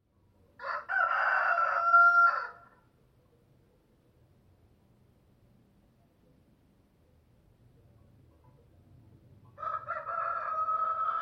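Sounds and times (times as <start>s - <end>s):
male chicken rooster crowing: 0.6s - 2.8s, 9.6s - 11.2s.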